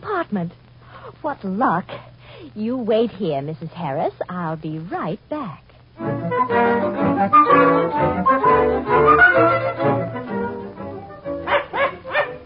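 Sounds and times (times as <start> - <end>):
speech: 0.2 - 9.5
dog barking: 11.5 - 12.4.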